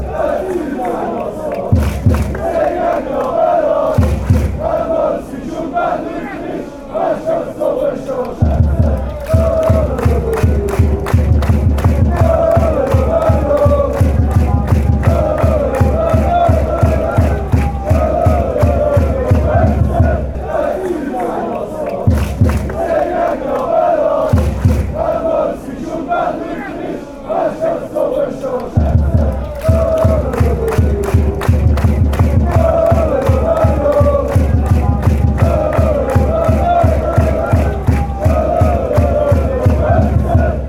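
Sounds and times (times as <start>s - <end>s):
football chants: 0.0s - 40.6s
verse drums: 1.6s - 2.6s, 3.8s - 4.9s, 8.4s - 20.6s, 21.9s - 23.0s, 24.2s - 25.2s, 28.7s - 40.6s.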